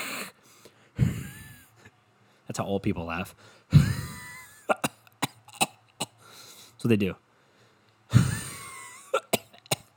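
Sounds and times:
harsh coughing fit with a wheezy rasp: 0.0 - 0.3, 1.0 - 1.6, 3.7 - 6.2, 8.1 - 9.9
person imitating a goose hissing: 0.0 - 0.4
speech: 2.5 - 3.9, 6.8 - 7.2.

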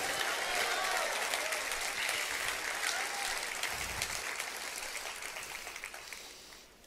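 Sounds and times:
people shouting praise to God: 0.0 - 2.2, 2.8 - 3.5
church audience applauding at a morning service: 0.0 - 6.7.

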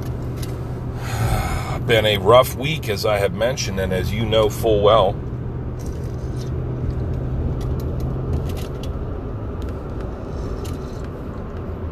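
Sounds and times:
steady low hum: 0.0 - 11.8
person sipping and slurping a hot beverage: 1.0 - 1.8
speech: 1.9 - 5.2.

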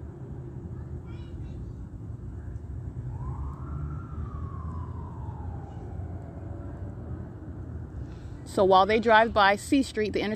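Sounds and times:
heavy street traffic rumble: 0.0 - 10.3
emergency vehicle siren whoop while passing: 3.0 - 7.3
speech: 8.5 - 10.3.

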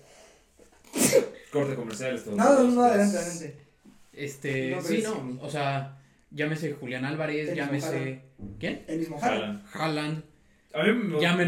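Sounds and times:
soft intake of breath: 0.0 - 0.7
sneeze: 0.8 - 1.5
speech: 1.2 - 11.4.

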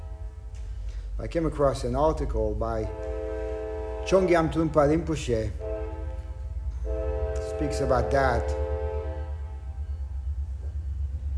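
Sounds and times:
train horn blast: 0.0 - 0.5, 2.8 - 9.9
train rumbling past: 0.0 - 11.3
speech: 1.2 - 3.1, 4.0 - 5.7, 7.6 - 8.6.

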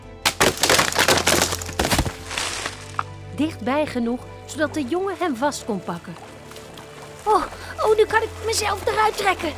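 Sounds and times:
beaver-gnawed tree crashing onto the ice of a pond: 0.2 - 3.1
tree wood cracking and splintering: 0.2 - 3.1
speech: 3.4 - 6.3, 7.3 - 9.5.

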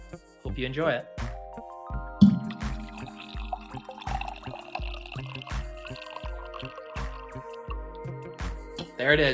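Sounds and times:
speech: 0.1 - 1.3, 9.0 - 9.3
coffee pouring into a cup: 2.3 - 7.7.

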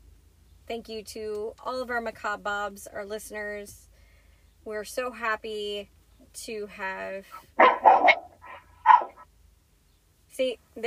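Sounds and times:
speech: 0.7 - 3.9, 4.6 - 8.2, 10.4 - 10.8
dog barking: 7.6 - 9.2.

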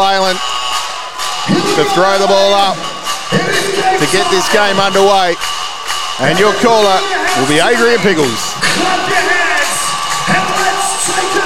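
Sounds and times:
large indoor basketball arena crowd cheering and roaring: 0.0 - 11.4
speech: 1.8 - 5.6, 6.2 - 9.3.

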